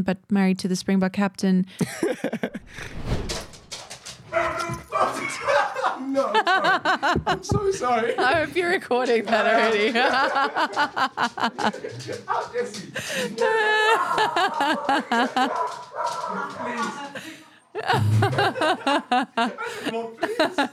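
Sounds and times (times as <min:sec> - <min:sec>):
speech: 0:00.0 - 0:03.4, 0:04.3 - 0:20.7
laughter: 0:01.8 - 0:02.8, 0:04.8 - 0:20.7
dog barking and yipping: 0:14.3 - 0:17.0.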